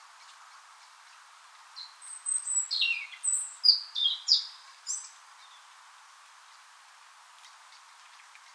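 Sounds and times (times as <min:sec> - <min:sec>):
European robin singing: 0:01.8 - 0:05.7.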